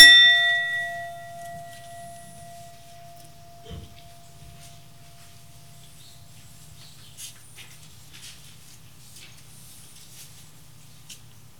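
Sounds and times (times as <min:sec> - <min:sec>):
chime struck hard in a children's chime activity: 0:00.0 - 0:05.8.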